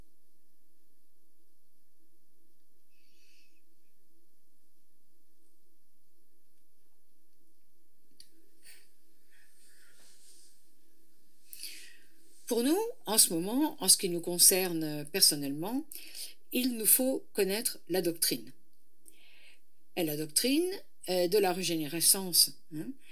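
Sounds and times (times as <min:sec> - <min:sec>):
faint breathy rustle: 0:08.3 - 0:12.5
slow deep breath in and out: 0:08.6 - 0:12.5, 0:15.9 - 0:16.4, 0:19.1 - 0:19.8
speech: 0:12.5 - 0:18.6, 0:20.0 - 0:23.1.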